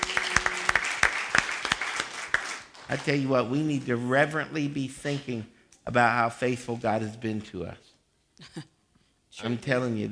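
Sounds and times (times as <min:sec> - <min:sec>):
congregation hand clapping during a church service: 0:00.0 - 0:04.0
speech: 0:02.9 - 0:07.8, 0:08.4 - 0:08.7, 0:09.4 - 0:10.1.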